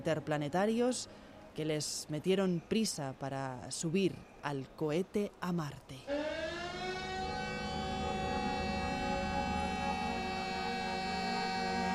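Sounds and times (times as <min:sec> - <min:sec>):
speech: 0:00.0 - 0:06.4
wailing siren: 0:06.1 - 0:11.9.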